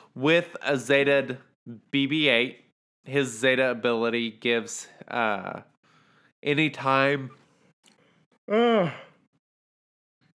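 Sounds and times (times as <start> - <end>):
speech: 0.2 - 5.7, 6.4 - 7.4, 8.5 - 9.1
faint breathing: 5.8 - 6.4
voiced yawn: 8.5 - 9.3.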